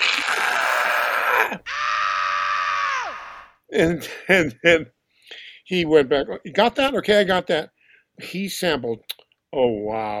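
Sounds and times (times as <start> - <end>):
man screaming loudly into a studio talkback microphone: 0.0 - 3.5
speech: 3.7 - 10.1.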